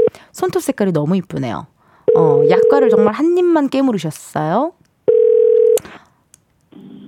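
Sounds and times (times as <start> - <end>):
speech: 0.4 - 4.8
telephone tone: 2.1 - 3.1, 5.1 - 5.8.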